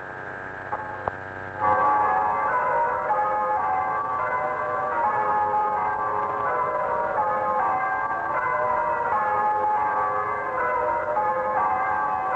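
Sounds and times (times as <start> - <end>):
parish church bells ringing a full peal: 0.8 - 12.3.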